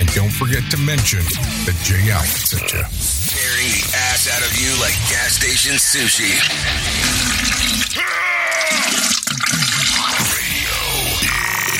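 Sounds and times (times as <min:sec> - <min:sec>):
speech: 0:00.3 - 0:10.8
toilet flushing: 0:06.0 - 0:10.6.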